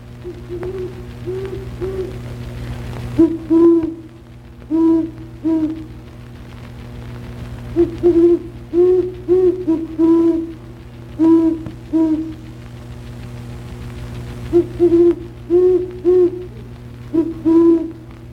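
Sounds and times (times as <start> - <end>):
steady low hum: 0.0 - 18.3
Great Horned Owl hooting: 0.2 - 2.2, 3.2 - 6.0, 7.7 - 12.6, 14.5 - 18.1.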